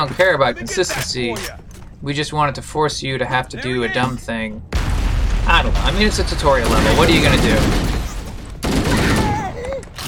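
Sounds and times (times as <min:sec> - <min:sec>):
speech: 0:00.0 - 0:04.8, 0:05.4 - 0:08.0
rapid gunfire in a shooter video game tutorial level: 0:04.8 - 0:09.6.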